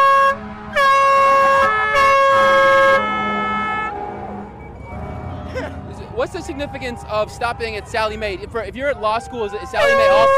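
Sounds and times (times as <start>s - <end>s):
ambulance or fire truck horn blaring through an intersection: 0.0s - 5.6s, 9.8s - 10.3s
faint street noise: 0.0s - 10.3s
speech: 6.5s - 10.3s.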